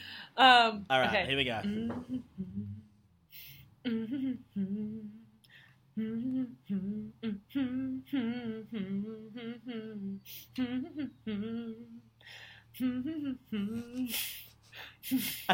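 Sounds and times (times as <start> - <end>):
speech: 0.4 - 2.8, 3.8 - 5.2, 6.0 - 15.5
person humming a pop Christmas song melody: 1.6 - 2.9, 3.9 - 5.2, 6.0 - 12.0, 12.8 - 14.5
breathy laughing bursts: 13.6 - 14.5.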